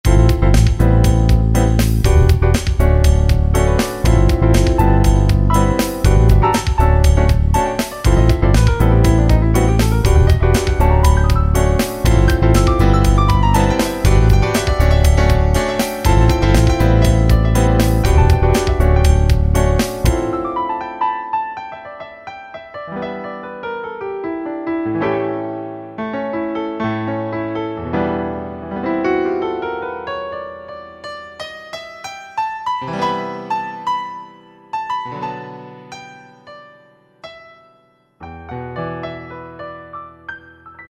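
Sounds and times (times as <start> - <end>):
grand piano jam on E-mu PK-6: 0.0 - 40.8.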